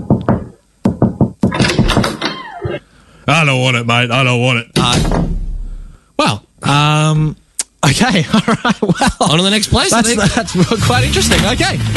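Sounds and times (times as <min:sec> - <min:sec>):
knocking on a front door: 0:00.0 - 0:02.2
speech: 0:03.3 - 0:05.3, 0:06.2 - 0:11.9
laughter: 0:08.0 - 0:11.3.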